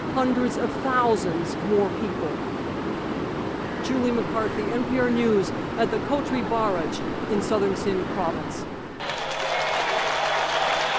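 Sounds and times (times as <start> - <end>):
speech: 0.2 - 2.6, 3.8 - 8.7
hundreds of thousands of people in Kenya cheering and applauding: 9.0 - 10.9.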